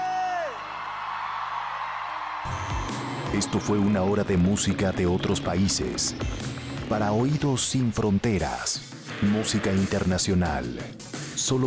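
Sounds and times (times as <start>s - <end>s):
person whooping in a shouted cheer: 0.0s - 0.6s
sustained roar of crowd noise: 0.0s - 7.2s
speech: 3.4s - 11.6s.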